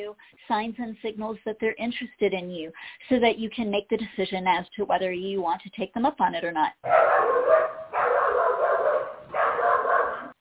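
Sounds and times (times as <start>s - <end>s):
speech: 0.0s - 8.7s
dog barking with drawn-out howling barks: 6.8s - 10.3s.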